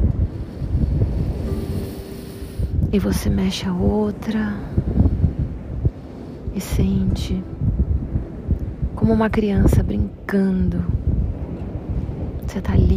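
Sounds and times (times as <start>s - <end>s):
rolling surf on a beach: 0.0s - 12.9s
rushing wind on a beach: 0.0s - 12.9s
speech: 2.9s - 4.8s, 6.6s - 7.6s, 9.0s - 11.0s, 12.5s - 12.9s.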